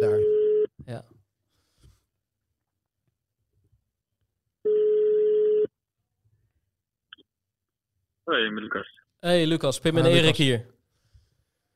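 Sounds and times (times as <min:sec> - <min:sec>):
ringback tone from an outgoing phone call: 0:04.6 - 0:05.7
speech: 0:08.4 - 0:10.7.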